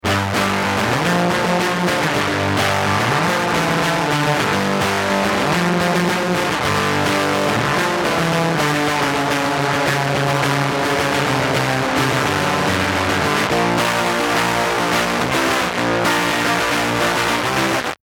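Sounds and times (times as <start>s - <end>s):
filthy rhythm guitar: 0.0s - 18.0s.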